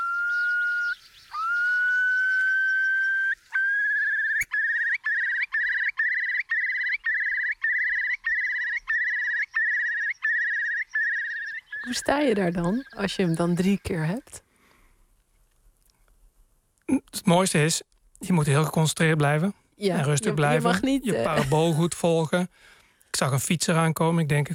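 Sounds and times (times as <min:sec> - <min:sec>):
Eurasian curlew display song with whistles and bubbling trills: 0:00.0 - 0:14.0
speech: 0:11.8 - 0:14.4, 0:17.3 - 0:24.5
laughter: 0:20.0 - 0:22.2.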